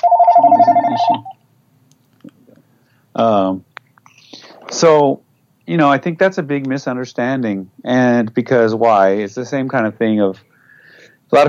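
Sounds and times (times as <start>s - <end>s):
phone ringing with warbling electronic tone: 0.0s - 1.4s
person's voice: 0.5s - 1.3s
speech: 1.0s - 1.4s, 3.2s - 3.7s, 4.8s - 10.5s, 11.3s - 11.4s.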